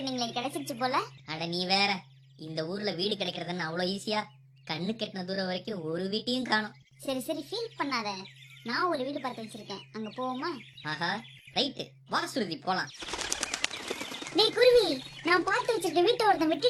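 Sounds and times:
Asian koel calling: 0:00.0 - 0:16.6
wing flapping or rustling: 0:12.8 - 0:16.6.

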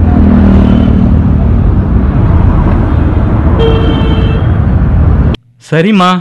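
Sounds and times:
loud steady rumble of street traffic: 0:00.0 - 0:05.8
car horns honking in street traffic: 0:02.9 - 0:04.8
speech: 0:05.7 - 0:06.1.

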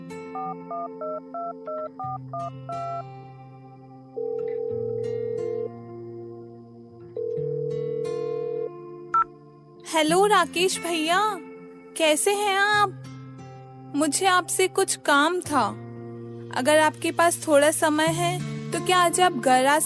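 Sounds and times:
telephone ringing tone on the line: 0:00.3 - 0:03.0, 0:04.2 - 0:05.7, 0:07.2 - 0:09.3
telephone keypad tones dialing a number: 0:00.4 - 0:03.0
speech: 0:00.8 - 0:03.3, 0:04.2 - 0:05.6, 0:09.9 - 0:13.0, 0:13.9 - 0:15.8, 0:16.5 - 0:19.8.

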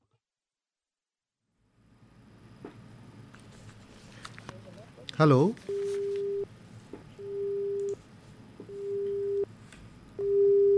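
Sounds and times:
speech: 0:05.2 - 0:05.7
telephone busy tone after a call was cut off: 0:05.7 - 0:06.5, 0:07.2 - 0:08.0, 0:08.7 - 0:09.5, 0:10.2 - 0:10.7.

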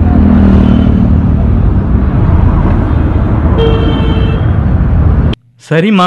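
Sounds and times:
constant roar of busy street traffic: 0:00.0 - 0:06.0
steady higher-pitched horn blaring: 0:03.5 - 0:04.6
vehicle horns honking in street traffic: 0:03.5 - 0:04.8
speech: 0:05.7 - 0:06.0.

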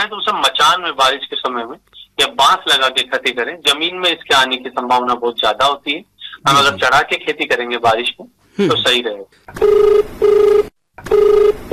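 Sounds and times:
speech: 0:00.0 - 0:11.7
telephone ringing with a loud electronic tone: 0:09.6 - 0:11.7.

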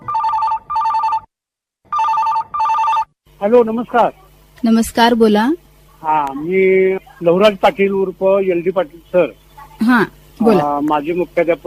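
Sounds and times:
telephone bell ringing for incoming listener call: 0:00.0 - 0:01.3, 0:01.9 - 0:03.1
speech: 0:03.4 - 0:11.6.

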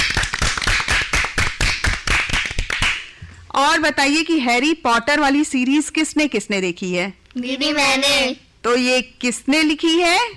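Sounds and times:
group of children clapping for a correct answer: 0:00.0 - 0:03.1
speech: 0:03.6 - 0:10.3.

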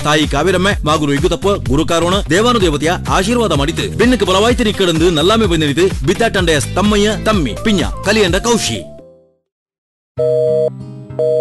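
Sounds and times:
speech: 0:00.0 - 0:08.9, 0:10.2 - 0:11.4
telephone busy tone on a call that cannot get through: 0:10.2 - 0:11.4.

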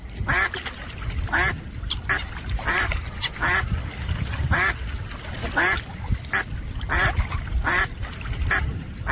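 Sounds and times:
ducks quacking: 0:01.3 - 0:03.8, 0:04.4 - 0:04.8, 0:05.4 - 0:09.0.

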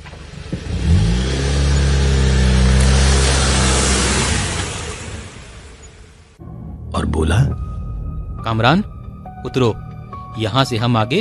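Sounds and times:
car engine driving and stopping: 0:00.0 - 0:06.2
speech: 0:08.5 - 0:11.1.

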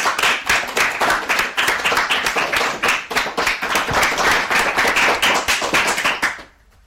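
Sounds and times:
crowd applauding with dense clapping: 0:00.0 - 0:06.8.

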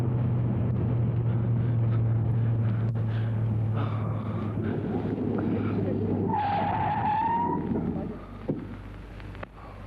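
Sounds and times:
car engine droning at speed: 0:00.0 - 0:09.8
car tires squealing as the vehicle skids to a halt: 0:01.1 - 0:08.4.

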